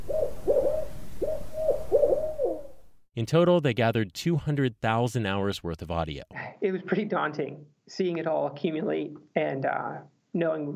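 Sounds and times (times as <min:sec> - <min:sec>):
spotted or barred owls hooting in the northern Sierra Nevada: 0:00.0 - 0:02.9
speech: 0:03.2 - 0:10.7.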